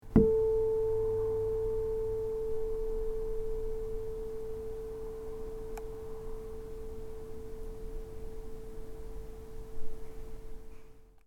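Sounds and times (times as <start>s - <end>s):
tuning fork: 0.0s - 11.2s.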